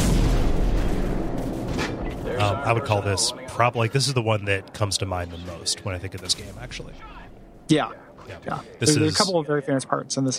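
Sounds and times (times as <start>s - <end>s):
AC-130 gunship cannon fire and explosions in a video game: 0.0s - 3.0s
speech: 2.4s - 10.3s.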